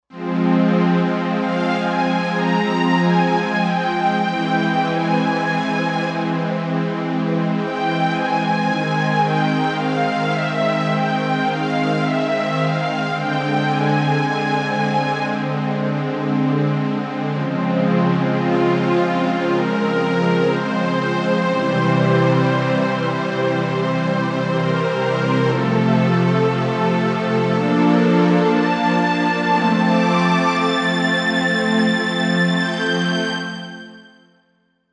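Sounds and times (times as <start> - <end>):
analog strings on Korg Wavestation A-D synthesizer: 0.1 - 34.1.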